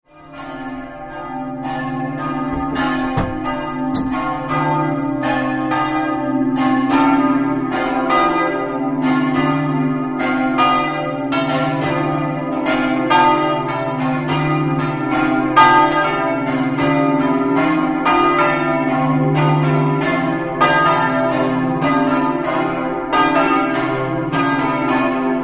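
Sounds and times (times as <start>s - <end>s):
bells ringing in Montenars: 0.1s - 25.4s.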